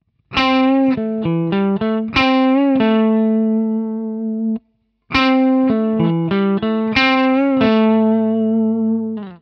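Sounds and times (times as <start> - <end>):
guitar minor third lick: 0.3 - 9.4.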